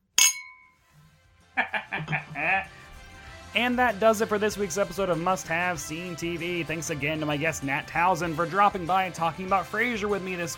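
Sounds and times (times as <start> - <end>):
glasses clinking in a toast: 0.0 - 0.8
people talking and laughing: 1.6 - 2.8
speech: 3.5 - 10.5.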